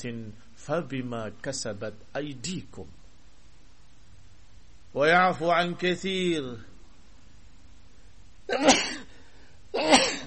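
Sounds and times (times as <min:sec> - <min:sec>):
speech: 0:00.0 - 0:03.0, 0:04.9 - 0:06.7, 0:08.5 - 0:09.0
person sneezing: 0:08.5 - 0:10.2.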